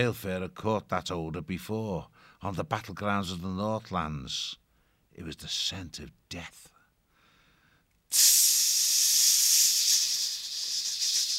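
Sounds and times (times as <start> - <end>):
speech: 0.0 - 4.6, 5.2 - 6.7, 8.1 - 8.7
snake hissing: 8.1 - 11.3.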